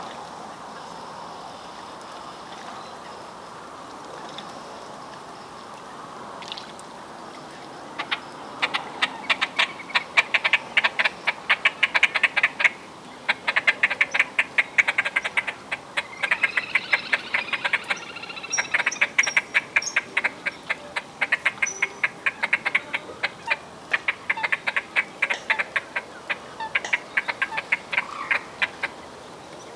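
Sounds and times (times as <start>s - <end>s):
Great Crested Grebe calling: 7.9s - 29.1s.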